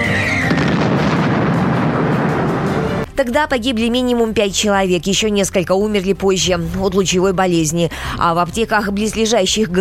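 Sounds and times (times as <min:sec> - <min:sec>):
rocket explosion deep rumbling blast: 0:00.2 - 0:03.1
speech: 0:03.2 - 0:09.7.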